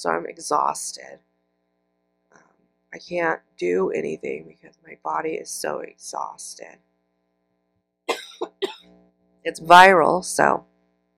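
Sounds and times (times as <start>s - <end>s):
speech: 0.0s - 1.3s, 2.9s - 6.9s, 9.4s - 10.7s
harsh coughs: 8.1s - 8.9s.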